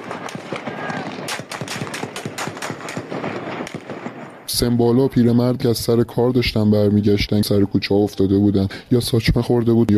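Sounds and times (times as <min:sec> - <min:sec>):
automatic rifle gunfire bursts: 0:00.0 - 0:04.3
speech: 0:04.5 - 0:09.9.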